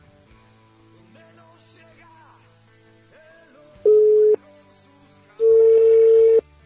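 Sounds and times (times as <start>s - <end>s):
telephone line beeps as a call is placed: 3.9s - 4.4s, 5.4s - 6.4s.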